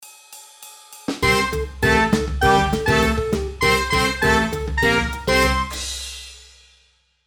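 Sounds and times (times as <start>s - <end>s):
classic ad break transition sitcom music: 1.2s - 5.9s.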